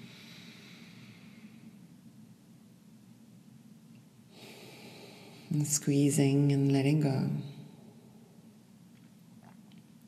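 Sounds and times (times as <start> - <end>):
slow deep breathing during a guided meditation: 0.0 - 1.9, 4.3 - 5.6
speech: 5.6 - 7.5.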